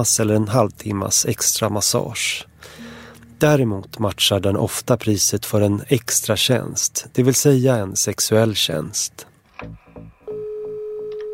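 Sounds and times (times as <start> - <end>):
speech: 0.0 - 2.8, 3.4 - 10.1
telephone ringing tone of an outgoing call to a massage salon: 10.3 - 11.3.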